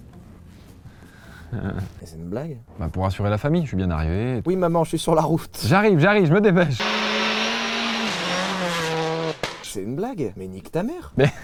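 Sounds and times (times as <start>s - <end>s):
speech: 1.5s - 7.0s, 9.8s - 11.4s
Citroën Xsara WRC rally car engine roaring at high revs: 6.8s - 9.7s.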